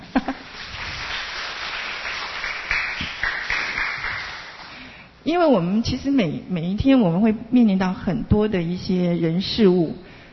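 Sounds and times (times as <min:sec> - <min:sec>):
audience applauding: 0:00.3 - 0:04.8
speech: 0:05.3 - 0:10.1.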